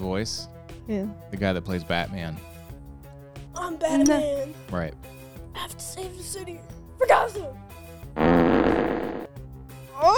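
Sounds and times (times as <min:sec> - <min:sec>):
speech: 0:00.1 - 0:02.5, 0:03.7 - 0:08.8
long buzzing fart: 0:08.2 - 0:09.3.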